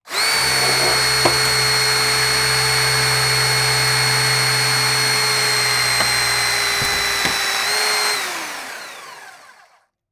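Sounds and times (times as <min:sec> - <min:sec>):
metal destruction by Jaws of Life hydraulic rescue tool: 0:00.1 - 0:07.9.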